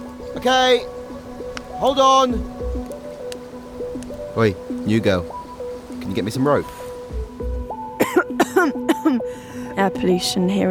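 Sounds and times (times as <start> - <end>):
speech: 0.4 - 1.0, 1.8 - 2.6, 4.4 - 5.4, 6.1 - 6.8, 8.6 - 10.6
people coughing harshly in a polluted northern area: 8.0 - 9.2.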